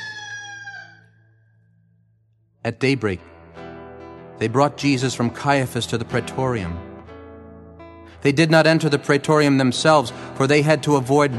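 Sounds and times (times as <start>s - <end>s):
rooster crowing: 0.0s - 1.0s
speech: 2.6s - 3.3s, 4.4s - 6.9s, 8.2s - 11.3s.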